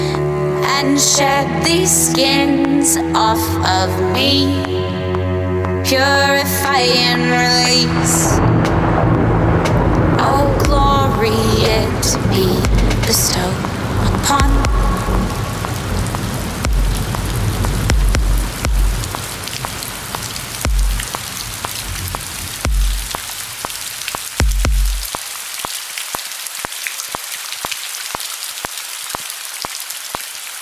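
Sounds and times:
rain: 0:00.0 - 0:04.7, 0:05.9 - 0:30.5
speech: 0:00.8 - 0:09.5, 0:10.2 - 0:13.7
low thunder rumbles: 0:07.6 - 0:25.1
metronome ticking: 0:12.6 - 0:25.3.

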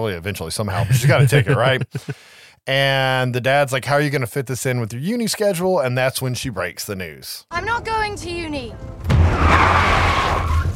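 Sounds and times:
speech: 0:00.0 - 0:10.4
laughter: 0:00.7 - 0:02.2
car tires screeching as the brakes lock up: 0:09.1 - 0:10.7.

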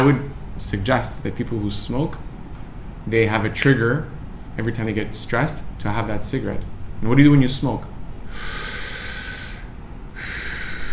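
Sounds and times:
speech: 0:00.0 - 0:02.3, 0:03.0 - 0:08.6
long slow inhale as a calming breath: 0:08.3 - 0:10.9.

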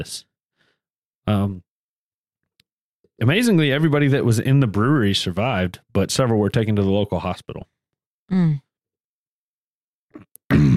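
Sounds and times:
speech: 0:00.0 - 0:00.3, 0:01.3 - 0:01.7, 0:03.2 - 0:07.7, 0:08.3 - 0:08.6
throat clearing: 0:10.1 - 0:10.7
suppressed cough: 0:10.2 - 0:10.7.

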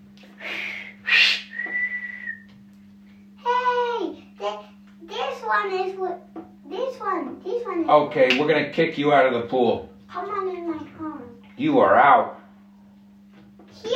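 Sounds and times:
whistle blown in short breathy blasts and a shrill tone: 0:00.5 - 0:02.5
young child talking excitedly: 0:03.4 - 0:08.0, 0:10.1 - 0:11.4, 0:13.8 - 0:13.9
speech: 0:05.5 - 0:10.4, 0:11.6 - 0:12.4.

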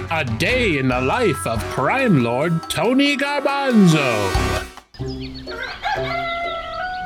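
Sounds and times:
speech: 0:00.1 - 0:06.4
loud drawn-out crowing call in the morning: 0:05.5 - 0:07.0.

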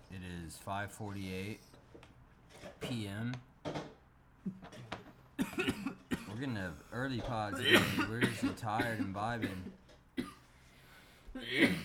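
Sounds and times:
speech: 0:00.4 - 0:01.8, 0:02.8 - 0:04.6, 0:06.4 - 0:09.7, 0:11.4 - 0:11.8
asthmatic person coughing harshly: 0:04.6 - 0:06.4, 0:07.5 - 0:10.4, 0:11.4 - 0:11.8.

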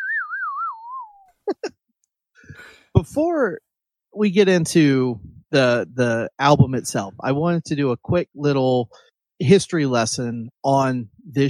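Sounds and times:
slide whistle warbling and gliding downward: 0:00.0 - 0:01.3
speech: 0:01.5 - 0:01.8, 0:02.4 - 0:11.4.

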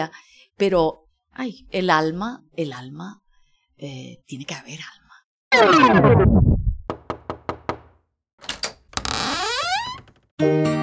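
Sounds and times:
speech: 0:00.0 - 0:03.2, 0:03.8 - 0:06.6, 0:10.4 - 0:10.7
knocking on a door: 0:06.9 - 0:08.0
creaky squeal: 0:09.0 - 0:10.0.

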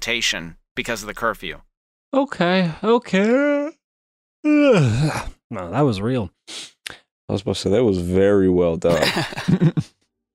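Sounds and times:
speech: 0:00.0 - 0:03.6, 0:04.4 - 0:10.0
person giving a voiced yawn: 0:04.4 - 0:05.4
laughter: 0:08.9 - 0:09.9.

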